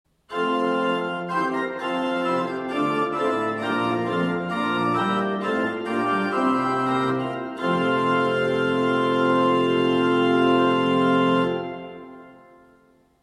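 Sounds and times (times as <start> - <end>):
pipe organ principal chorus: 0.3 - 13.2.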